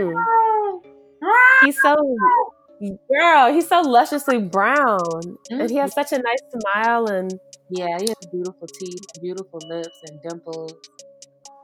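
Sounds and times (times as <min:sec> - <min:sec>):
person imitating cat meows: 0:00.0 - 0:02.5
speech: 0:01.6 - 0:11.1.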